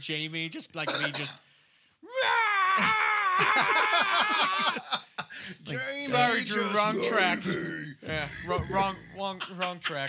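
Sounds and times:
speech: 0.0 - 1.5, 2.2 - 10.0
person imitating a death metal scream: 2.1 - 4.7
laughter: 2.8 - 10.0.

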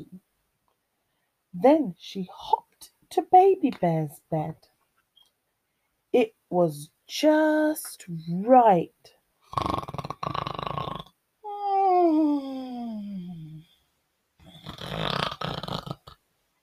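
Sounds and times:
speech: 1.5 - 4.7, 6.1 - 9.8
voice imitating a girl snoring: 9.4 - 11.1, 14.4 - 16.2.

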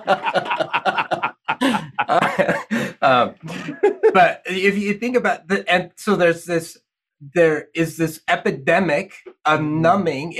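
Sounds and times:
laughter: 0.0 - 4.8
speech: 0.1 - 0.5, 3.1 - 10.3
person coughing fit: 1.6 - 4.4.

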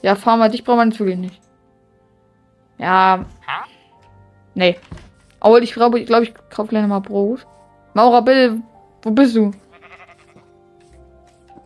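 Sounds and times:
speech: 0.0 - 1.4, 2.8 - 3.7, 4.6 - 9.6
sheep bleating: 9.6 - 10.4.

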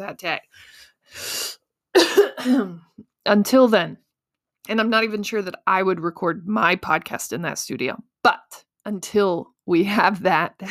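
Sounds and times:
speech: 0.0 - 4.0, 4.6 - 10.7
sharp intake of breath: 0.6 - 1.6.

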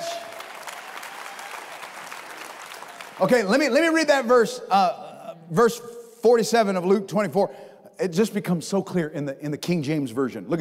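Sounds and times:
audience applauding: 0.0 - 3.9
speech: 3.2 - 10.6.

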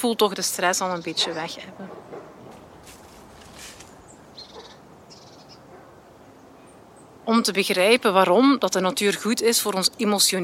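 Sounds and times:
speech: 0.0 - 2.1, 7.3 - 10.4
soft outdoor ambience: 0.0 - 10.4
faint short high bird chirps outdoors: 0.3 - 7.9.

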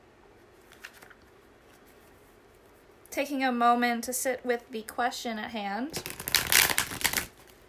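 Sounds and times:
deck of tarot cards shuffled for a tarot reading: 0.6 - 2.2, 5.9 - 7.6
speech: 3.2 - 6.2.

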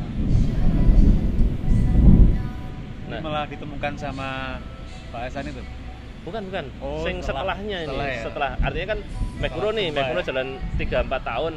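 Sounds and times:
thunder rumbling: 0.0 - 5.0
speech: 3.4 - 11.5.

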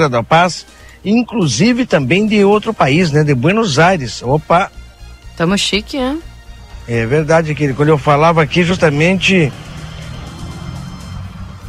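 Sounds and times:
speech: 0.0 - 4.8, 5.4 - 6.3, 6.9 - 9.7
pickup truck braking in morning street traffic: 6.5 - 11.6
motorcycle approaching: 7.4 - 11.6.

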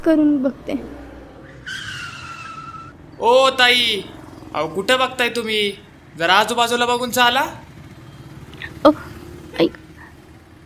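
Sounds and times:
speech: 0.0 - 1.1, 3.2 - 7.6, 8.8 - 9.8
auto-rickshaw low engine rumble: 0.0 - 10.6
auto-rickshaw tires squealing as it skids to a stop: 0.7 - 3.2.

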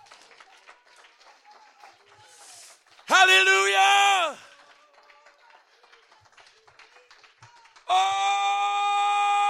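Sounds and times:
crowd hand clapping during a worship service: 0.0 - 9.4
person shouting in a loud sustained voice: 3.1 - 4.4, 7.9 - 9.4
speech: 3.1 - 4.4.

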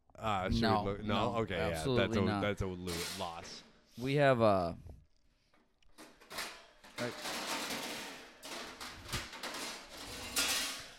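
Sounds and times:
speech: 0.2 - 4.9, 7.0 - 7.3
kitchen utensils clattering: 2.9 - 3.6, 6.0 - 10.9
dishes clattering in a kitchen: 6.0 - 10.9.

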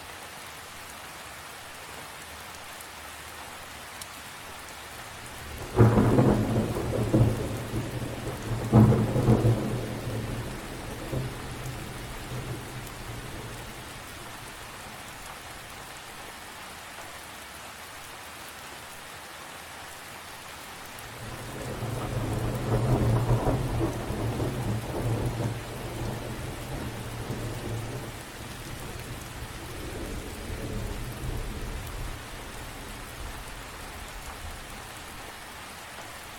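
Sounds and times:
steady dense rain pattering on leaves: 0.0 - 36.3
deep rumbles of thunder: 5.4 - 13.9, 21.2 - 33.4.

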